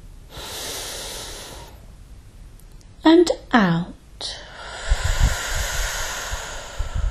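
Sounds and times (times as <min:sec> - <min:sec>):
deep breath in during a guided breathing exercise: 0:00.3 - 0:01.9, 0:04.3 - 0:07.0
speech: 0:03.1 - 0:04.4.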